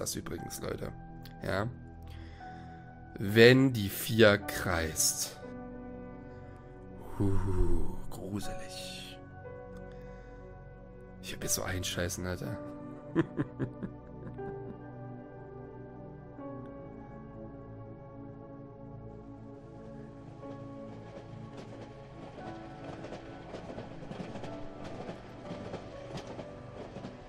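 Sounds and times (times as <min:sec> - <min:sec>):
speech: 0:00.0 - 0:01.8, 0:03.2 - 0:05.4, 0:07.2 - 0:09.0, 0:11.2 - 0:14.5
laughter: 0:13.2 - 0:14.8
train running on rails: 0:19.3 - 0:27.2
sharp clacks of a train: 0:20.8 - 0:27.2.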